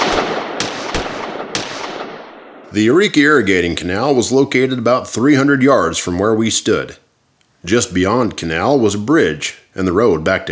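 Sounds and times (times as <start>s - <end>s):
gunshots with rumbling echo: 0.0s - 3.4s
speech: 2.7s - 7.0s, 7.6s - 10.4s.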